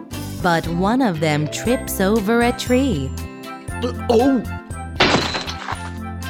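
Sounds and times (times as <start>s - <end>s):
soft music: 0.0s - 6.2s
speech: 0.4s - 3.2s, 3.8s - 4.6s
glass box falling to the ground and shattering: 5.0s - 6.0s.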